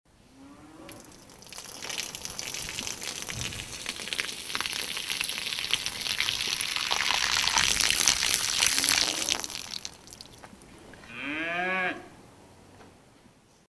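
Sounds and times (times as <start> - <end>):
cow urinating: 0.8 - 10.8.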